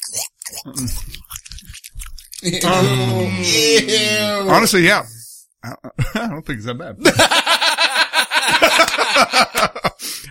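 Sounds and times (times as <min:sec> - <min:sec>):
wet chewing of a huge bite of food: 0:00.0 - 0:02.9
speech: 0:00.6 - 0:01.3, 0:02.4 - 0:07.7, 0:09.2 - 0:09.9
laughter: 0:07.0 - 0:10.0.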